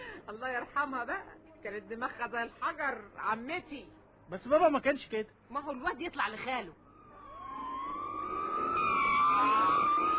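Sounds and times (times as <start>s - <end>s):
speech: 0.3s - 6.8s
police emergency car siren wailing: 6.9s - 10.1s.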